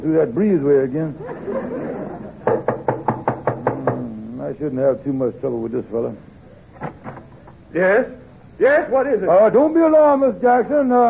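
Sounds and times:
speech: 0.0s - 1.7s, 4.4s - 6.3s, 7.7s - 11.0s
laughter: 1.2s - 2.7s
knocking on a door: 2.5s - 4.1s.

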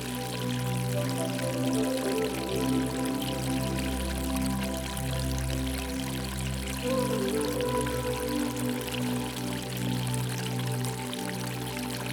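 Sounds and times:
soft spa music of held low drones and warm layered tones: 0.0s - 12.1s
steady rush of falling water from waterfalls: 0.0s - 12.1s.

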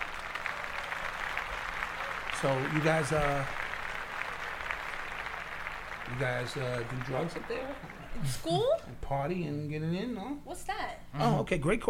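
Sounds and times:
small group clapping: 0.0s - 9.0s
speech: 2.4s - 3.6s, 6.1s - 11.8s.

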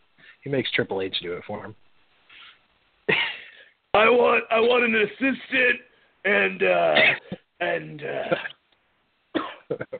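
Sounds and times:
speech: 0.4s - 1.8s, 4.0s - 8.5s, 9.7s - 9.9s
person clearing throat: 6.9s - 7.5s, 8.2s - 8.6s, 9.3s - 9.9s
person coughing: 6.9s - 7.5s, 8.2s - 8.6s, 9.3s - 9.9s.

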